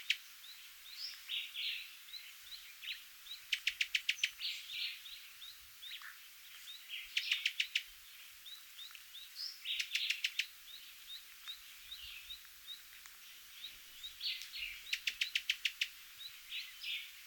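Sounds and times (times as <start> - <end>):
Cuban tody buzzy chirps: 2.9 - 5.0, 7.0 - 7.9, 9.5 - 10.5, 13.6 - 17.2
Cuban tody giving sharp clicking calls: 3.4 - 4.4, 7.1 - 7.9, 9.7 - 10.5, 14.3 - 16.0.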